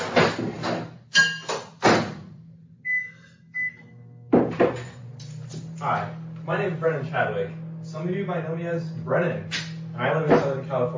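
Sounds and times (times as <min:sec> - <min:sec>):
microwave oven humming steadily: 0:01.4 - 0:10.9
microwave oven short electronic beeps: 0:02.9 - 0:03.9
speech: 0:05.8 - 0:10.9.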